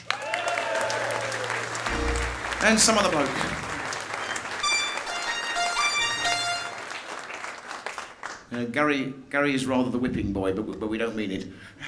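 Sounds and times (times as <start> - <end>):
crowd applauding: 0.0 - 8.5
speech: 2.6 - 3.6, 8.5 - 11.8.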